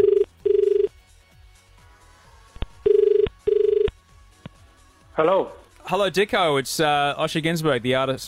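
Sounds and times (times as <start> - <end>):
telephone ringback tone: 0.0 - 0.9, 2.8 - 3.9
speech: 5.2 - 8.2.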